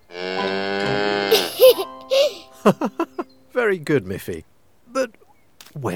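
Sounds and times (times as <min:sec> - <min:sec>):
cow mooing: 0:00.0 - 0:01.5
speech: 0:02.6 - 0:03.1, 0:03.7 - 0:05.1, 0:05.8 - 0:05.9.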